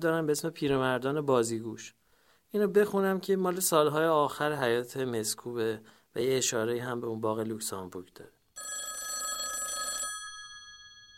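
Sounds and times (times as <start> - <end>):
speech: 0.0 - 8.4
telephone bell ringing: 8.6 - 11.1.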